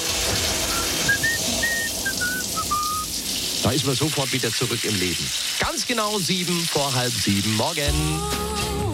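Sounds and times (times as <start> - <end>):
running shower water: 0.0 - 8.8
person whistling a short wavering tune: 0.7 - 3.1
speech: 3.6 - 8.5.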